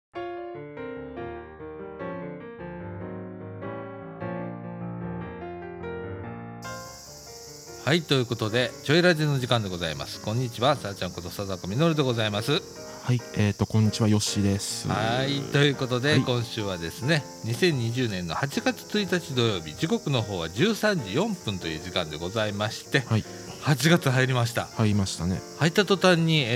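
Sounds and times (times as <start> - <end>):
cicadas buzzing outside: 6.6 - 26.5
speech: 7.9 - 26.5.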